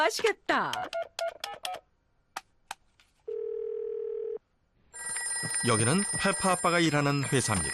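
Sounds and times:
speech: 0.0s - 1.0s, 5.6s - 7.7s
long steady telephone ringing tone on the line: 3.3s - 4.4s, 5.0s - 7.7s.

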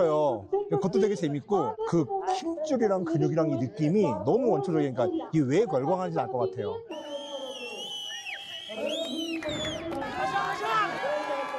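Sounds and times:
speech: 0.0s - 7.0s
overlapping excited voices and shouts: 6.9s - 11.5s
lively crowd applauding after the match: 7.8s - 11.5s.

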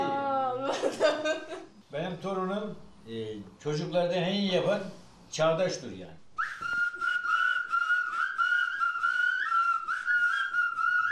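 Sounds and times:
speech: 0.8s - 6.2s
several people whistling together in harmony: 6.4s - 11.1s.

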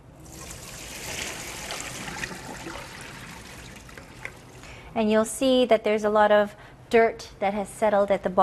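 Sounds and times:
cold tap water running over spinach: 0.2s - 4.7s
speech: 5.0s - 8.4s.

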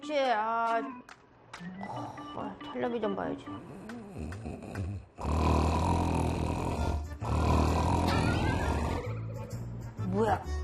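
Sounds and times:
speech: 0.0s - 6.0s, 10.1s - 10.6s
person snoring loudly with harsh rasping breaths: 1.8s - 2.3s, 3.6s - 9.2s.

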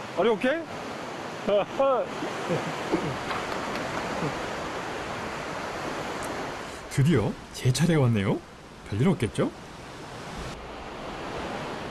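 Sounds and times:
water rushing in a strong mountain valley stream: 0.0s - 11.9s
speech: 0.2s - 0.8s, 1.4s - 3.5s, 7.0s - 9.6s.

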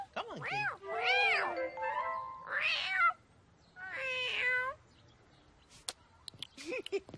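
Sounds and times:
cat meowing: 0.4s - 1.5s, 2.5s - 3.2s, 3.8s - 4.8s.

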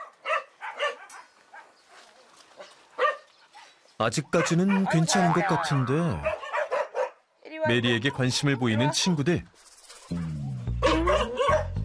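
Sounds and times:
dogs in kennels barking: 0.0s - 1.8s, 2.6s - 7.2s, 7.8s - 9.1s, 10.8s - 11.8s
speech: 4.0s - 6.4s, 7.6s - 10.3s.

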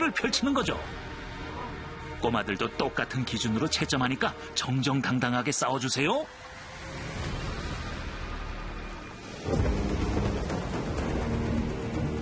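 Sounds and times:
speech: 0.1s - 1.1s, 2.2s - 7.1s
heavy rain in a storm: 6.4s - 12.1s
thunder rumbling: 7.2s - 12.1s.

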